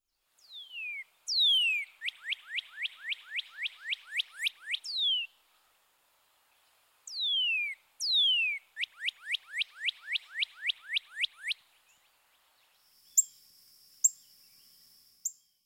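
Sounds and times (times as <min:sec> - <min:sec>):
bird whistled call: 0:00.4 - 0:05.3, 0:07.1 - 0:11.6.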